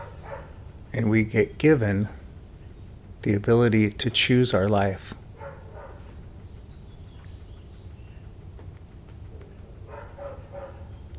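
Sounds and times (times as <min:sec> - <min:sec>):
neighbor's dog barking: 0:00.0 - 0:00.7, 0:05.3 - 0:06.2, 0:09.3 - 0:11.0
steady low hum: 0:00.0 - 0:11.1
speech: 0:01.0 - 0:02.2, 0:03.2 - 0:05.2.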